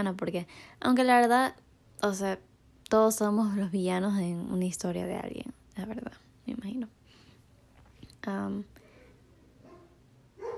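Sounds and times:
speech: 0.0 - 7.0, 8.2 - 8.8
dog barking loudly: 9.6 - 10.5.

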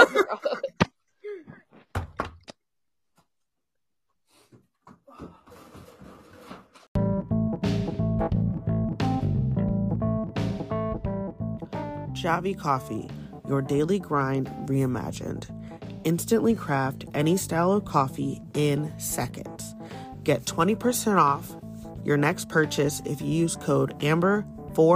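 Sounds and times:
laughter: 0.0 - 0.9
speech: 0.3 - 0.7, 12.2 - 19.5, 20.2 - 24.9
door clicks and thuds: 1.8 - 2.6
loud music: 7.0 - 21.5.

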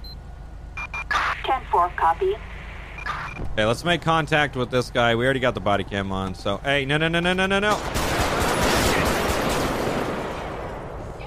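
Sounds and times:
speech: 1.5 - 2.5, 3.1 - 8.0
gunfire in a police video game: 7.7 - 10.7.

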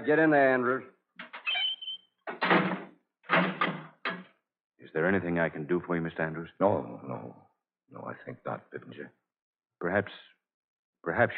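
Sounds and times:
speech: 0.0 - 1.0, 5.0 - 9.2, 9.8 - 10.4, 11.0 - 11.3
heavy cell door hauled open and slammed shut: 2.3 - 4.3.

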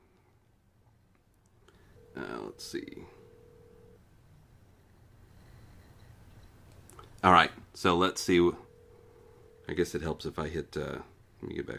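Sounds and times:
hiss: 0.0 - 11.7
ringing tone of an outgoing phone call: 1.8 - 4.1, 8.2 - 10.1
speech: 2.5 - 3.2, 7.2 - 8.6, 9.7 - 11.7.

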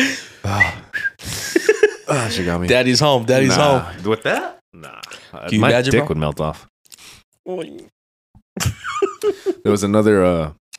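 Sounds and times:
short breathy whistles: 0.5 - 1.3
laughter: 1.3 - 2.6, 8.6 - 9.6
speech: 2.2 - 6.7, 7.4 - 8.0, 8.6 - 10.6.

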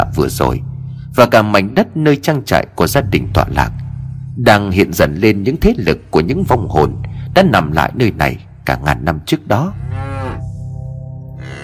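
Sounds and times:
speech: 0.1 - 3.8, 4.4 - 10.1
cattle mooing mournfully outside the barn: 9.7 - 10.5, 11.4 - 11.6.

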